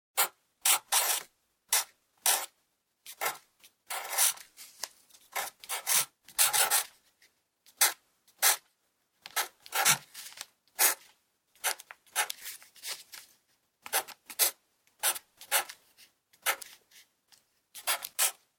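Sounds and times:
pencil writing: 0.2 - 4.5, 5.3 - 7.0, 7.7 - 8.6, 9.2 - 10.2, 10.8 - 12.6, 13.8 - 17.1, 17.8 - 18.4.

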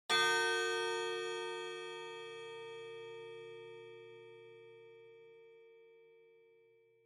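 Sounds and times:
high pendulum clock chime: 0.1 - 4.6.

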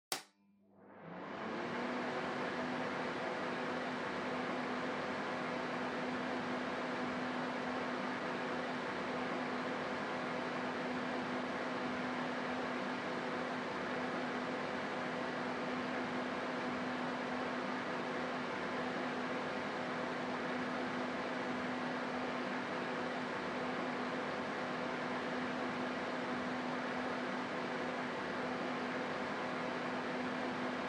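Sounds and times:
distant air circulator running on high: 1.0 - 30.8.

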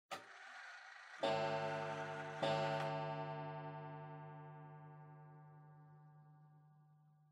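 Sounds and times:
pendulum clock chime: 1.2 - 6.4.

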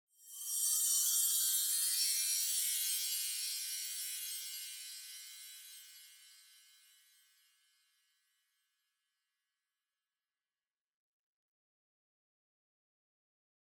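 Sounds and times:
long sparkle sound: 0.2 - 8.0.

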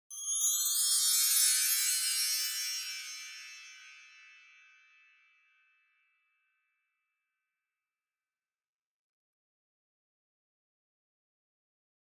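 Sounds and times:
wind chimes with reverb: 0.1 - 5.6.

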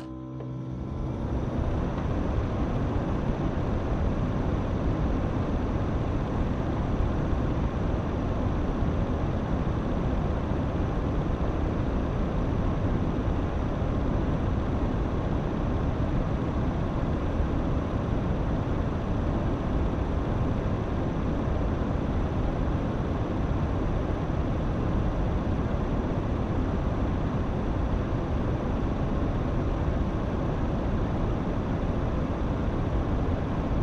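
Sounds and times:
air conditioner running on high: 0.1 - 33.8.

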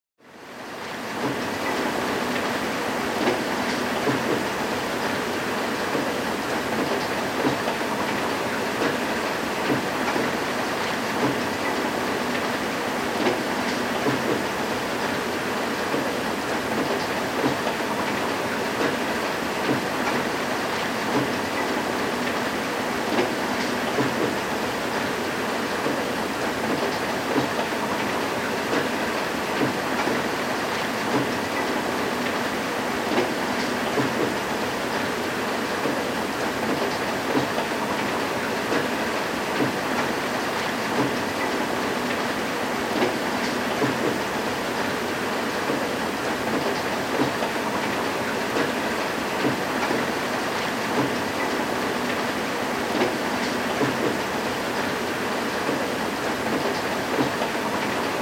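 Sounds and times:
rain: 0.3 - 58.1.

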